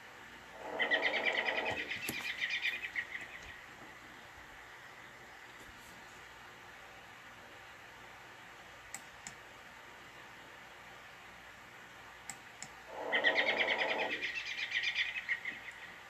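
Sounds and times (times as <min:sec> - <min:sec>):
American robin singing: 0:00.7 - 0:03.7, 0:13.0 - 0:16.0.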